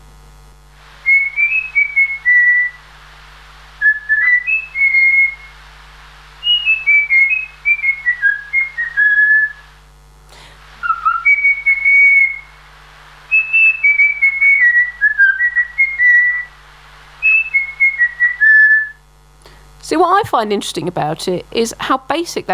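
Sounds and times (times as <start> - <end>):
trained songbird whistling a learned tune: 1.1 - 2.8, 3.8 - 5.6, 6.4 - 9.6, 10.8 - 12.6, 13.3 - 16.6, 17.2 - 19.0
speech: 19.9 - 22.5.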